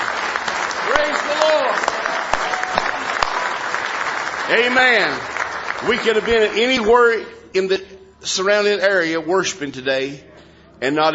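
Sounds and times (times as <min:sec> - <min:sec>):
church congregation clapping hands in praise during a worship service: 0:00.0 - 0:07.1
speech: 0:04.5 - 0:11.1.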